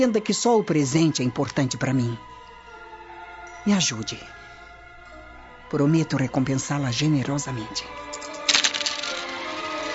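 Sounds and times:
speech: 0.0s - 2.3s, 3.6s - 4.4s, 5.7s - 8.1s
handful of coins from a purse dropped onto a table: 8.1s - 9.9s.

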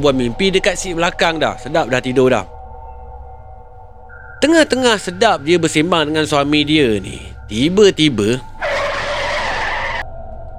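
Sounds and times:
speech: 0.0s - 2.6s, 4.4s - 8.5s
low rumble: 0.0s - 10.5s
car tires skidding on the road: 8.5s - 10.0s.

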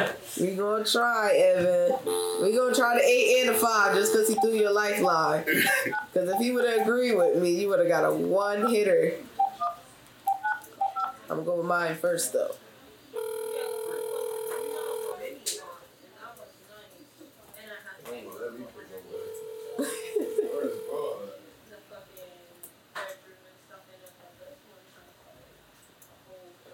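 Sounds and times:
speech: 0.1s - 9.3s, 11.3s - 12.6s
telephone keypad dialing tones: 1.9s - 5.2s, 5.9s - 7.4s, 13.2s - 15.2s, 19.2s - 21.1s.

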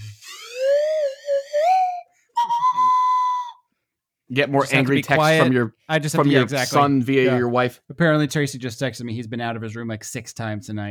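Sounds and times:
slide whistle gliding tone: 0.1s - 3.7s
speech: 4.3s - 10.8s.

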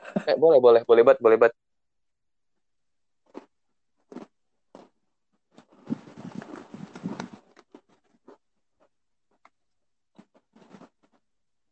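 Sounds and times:
speech: 0.2s - 1.6s
person chewing a Lotus biscuit: 3.2s - 11.3s.

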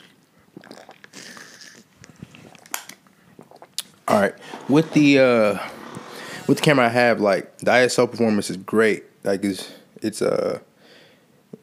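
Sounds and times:
small wet mouth clicks and lip smacks: 0.0s - 4.0s
person sipping a drink: 0.0s - 5.0s
speech: 4.1s - 5.7s, 6.5s - 10.7s.

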